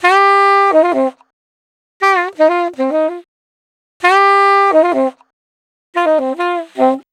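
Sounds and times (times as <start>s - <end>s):
saxophone in E flat: 0.0s - 1.3s, 2.0s - 3.3s, 4.0s - 5.3s, 6.0s - 7.1s.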